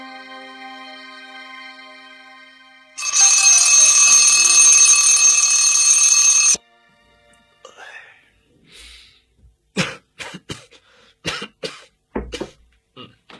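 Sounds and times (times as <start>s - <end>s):
alarm clock electronic ring: 3.0s - 6.6s
person coughing and clearing throat: 9.8s - 13.2s.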